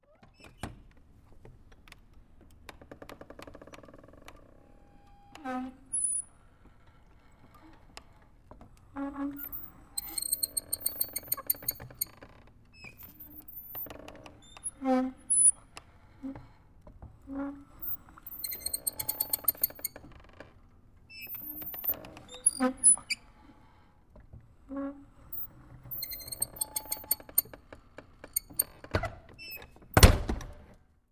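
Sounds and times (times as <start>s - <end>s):
metal wood door opening with a squeak: 0.0s - 0.9s, 3.1s - 6.4s, 8.9s - 16.6s, 17.3s - 23.4s, 24.7s - 30.5s.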